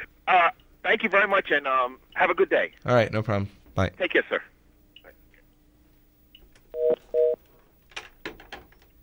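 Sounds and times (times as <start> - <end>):
speech: 0.3 - 4.5
telephone touch-tone beeps: 6.8 - 7.4.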